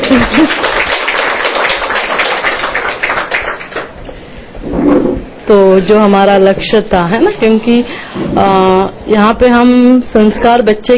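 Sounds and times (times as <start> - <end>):
audience clapping: 0.0 - 4.0
speech: 0.1 - 0.8, 5.5 - 10.9.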